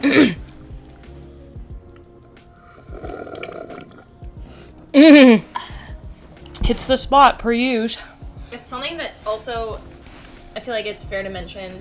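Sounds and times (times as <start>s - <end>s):
speech: 0.0s - 0.4s, 6.7s - 8.1s, 8.7s - 9.9s, 10.6s - 11.7s
soft airy slurp of a drink: 2.7s - 4.2s
brief vocal noises: 2.7s - 5.6s
loud throaty gulp: 2.7s - 5.7s.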